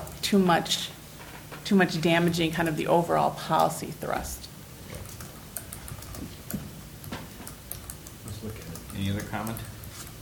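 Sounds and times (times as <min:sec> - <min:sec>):
typing on a computer keyboard during a policy meeting: 0:00.0 - 0:00.3, 0:04.9 - 0:10.1
speech: 0:00.3 - 0:01.0, 0:01.7 - 0:04.4, 0:09.0 - 0:09.7.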